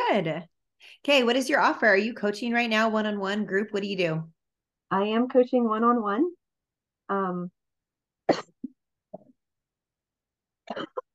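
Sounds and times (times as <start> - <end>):
speech: 0.1 - 6.4, 7.1 - 7.6, 8.3 - 8.5
person coughing: 8.3 - 8.7, 10.7 - 11.1.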